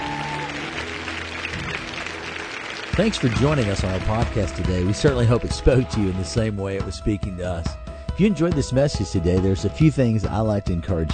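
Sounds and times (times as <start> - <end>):
worship congregation clapping hands in praise: 0.0 - 6.0
speech: 3.0 - 11.1.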